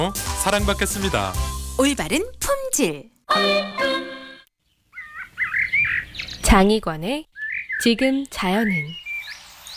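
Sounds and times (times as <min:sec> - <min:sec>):
speech: 0:00.0 - 0:04.0, 0:06.5 - 0:09.0
sustained musical chord: 0:03.3 - 0:04.5
robin singing warbling phrases in a forest in May: 0:03.3 - 0:06.6, 0:07.3 - 0:09.7.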